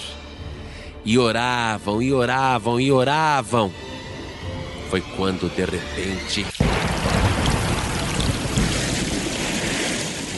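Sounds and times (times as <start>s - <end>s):
speech: 1.0s - 3.8s, 4.9s - 6.6s
deep rumble of thunder: 6.6s - 10.3s
loud steady wash of rain: 6.6s - 10.3s.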